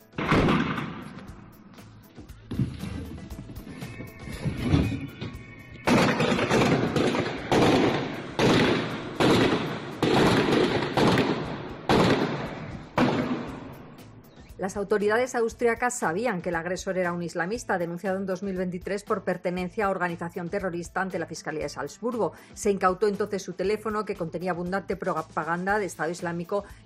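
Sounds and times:
gunfire in a shootout between an attacker and police: 0.1s - 1.5s, 5.8s - 14.1s
speech: 14.6s - 26.8s.

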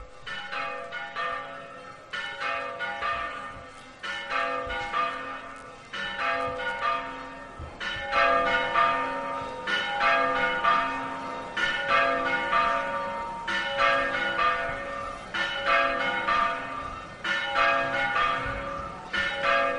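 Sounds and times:
church bells ringing the quarter hour: 0.0s - 19.7s.

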